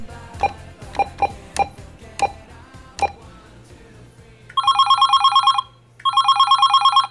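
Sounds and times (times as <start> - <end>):
short keypad beeps: 0.4 - 2.4, 4.5 - 7.0
telephone ringing with electronic trilling bursts: 4.6 - 7.0.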